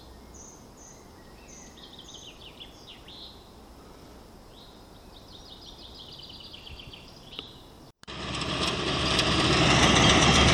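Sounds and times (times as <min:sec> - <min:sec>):
tractor engine running: 0:08.0 - 0:10.5.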